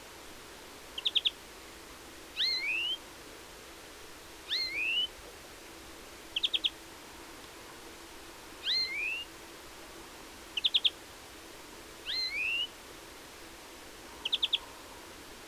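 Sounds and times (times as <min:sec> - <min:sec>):
European greenfinch Chloris chloris rising whistled call: 0:01.0 - 0:01.3, 0:02.4 - 0:03.0, 0:04.5 - 0:05.1, 0:06.4 - 0:06.7, 0:08.6 - 0:09.2, 0:12.1 - 0:12.7, 0:14.2 - 0:14.6.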